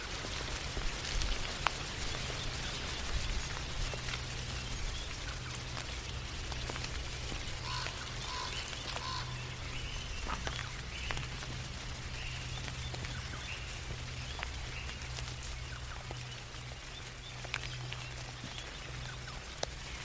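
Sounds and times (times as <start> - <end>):
low constant hum: 0.0 - 20.0
raindrops falling on a tree: 0.0 - 20.0
sharp individual drips: 0.2 - 20.0
faint high bird-like calls: 7.6 - 10.8.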